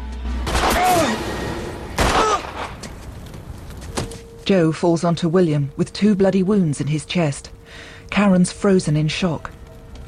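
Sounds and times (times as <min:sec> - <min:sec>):
gunshots fired by a woman during a struggle: 0:00.4 - 0:02.8
speech: 0:04.5 - 0:10.0.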